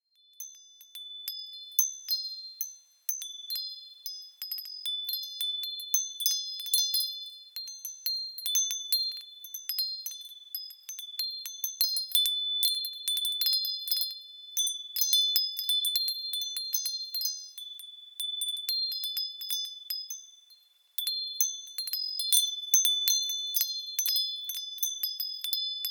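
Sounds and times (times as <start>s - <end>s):
wind chimes bells: 0.0s - 25.8s.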